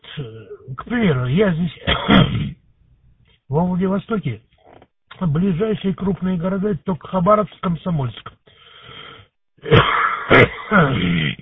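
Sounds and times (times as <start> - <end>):
speech: 0.2 - 2.5, 3.5 - 4.5, 5.2 - 8.3, 9.6 - 11.4
raspy phlegmy smoker's cough over amateur radio from Vladivostok: 1.8 - 2.6, 9.6 - 11.4
rough wheezy breathing: 8.4 - 9.4.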